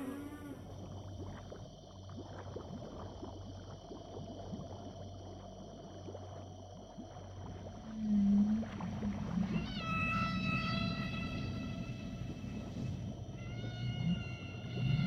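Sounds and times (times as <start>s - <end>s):
whale calls in the ocean: 0.0s - 1.0s, 7.9s - 15.0s.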